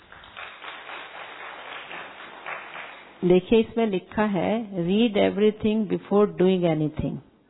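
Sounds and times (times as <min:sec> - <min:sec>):
group of people clapping: 0:00.0 - 0:03.2
speech: 0:03.2 - 0:07.3.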